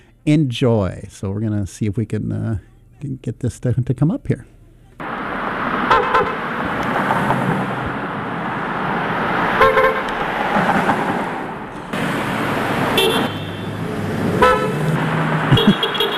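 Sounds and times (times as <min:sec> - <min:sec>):
speech: 0:00.2 - 0:04.6
steady road noise: 0:04.5 - 0:16.1
car horns honking for a ceasefire: 0:05.0 - 0:07.5, 0:09.4 - 0:10.5, 0:11.7 - 0:16.1.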